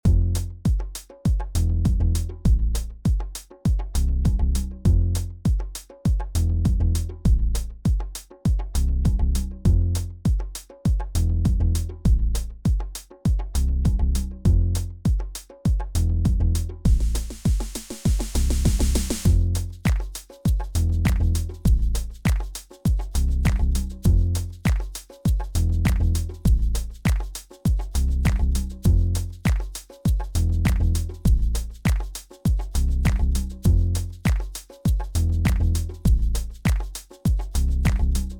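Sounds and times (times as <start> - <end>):
bass: 0.0 - 0.8, 1.5 - 3.2, 3.8 - 5.6, 6.3 - 8.0, 8.6 - 10.4, 11.1 - 12.8, 13.4 - 15.2, 15.9 - 17.6, 18.2 - 38.3.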